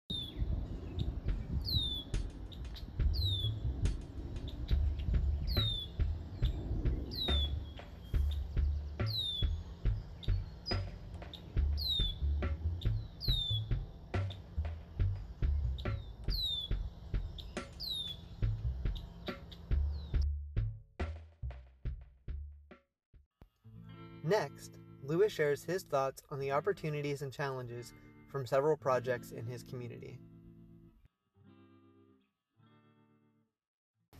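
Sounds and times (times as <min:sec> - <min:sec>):
birds chirping outdoors: 0:00.1 - 0:20.2
low steady rumble of noise: 0:00.4 - 0:20.2
speech: 0:24.3 - 0:30.3.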